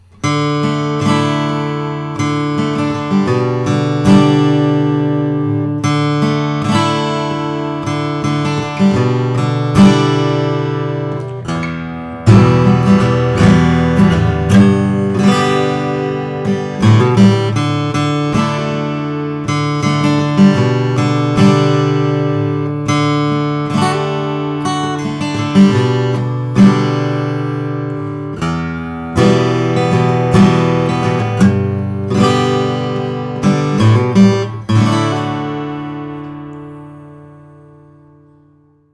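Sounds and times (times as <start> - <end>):
acoustic guitar with natural finish and aging toner: 0.0 - 38.9.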